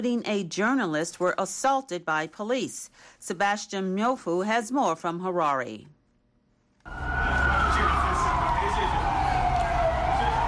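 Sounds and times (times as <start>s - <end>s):
speech: 0.0s - 6.0s, 6.8s - 7.9s
siren of a police water cannon vehicle wailing at a street protest in Harare, Zimbabwe: 6.9s - 10.4s.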